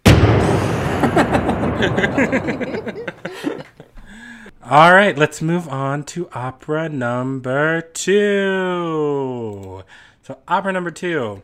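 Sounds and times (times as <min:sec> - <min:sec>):
loud cannon blast: 0:00.0 - 0:03.6
speech: 0:01.0 - 0:03.5, 0:04.7 - 0:11.4
people chuckling and laughing: 0:01.0 - 0:04.0.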